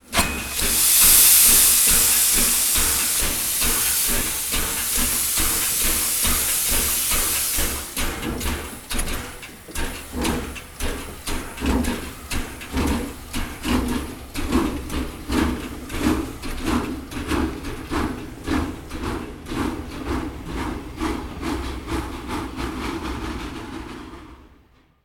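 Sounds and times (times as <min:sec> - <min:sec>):
steam locomotive departing: 0:00.0 - 0:24.7.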